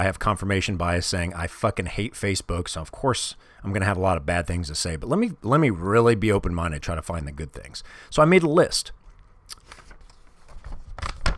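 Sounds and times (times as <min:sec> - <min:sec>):
speech: 0:00.0 - 0:09.0
sheets of paper rustling and crinkling: 0:09.0 - 0:11.3.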